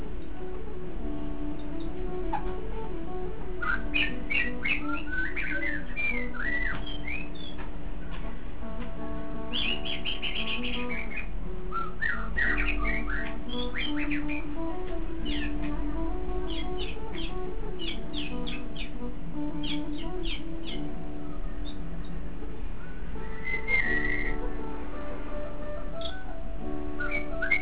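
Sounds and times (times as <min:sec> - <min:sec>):
faint tonal drone: 0:00.0 - 0:27.5
white-rumped shama whistled song: 0:03.6 - 0:08.2, 0:09.5 - 0:21.8, 0:22.8 - 0:24.5, 0:25.8 - 0:26.4, 0:27.0 - 0:27.5.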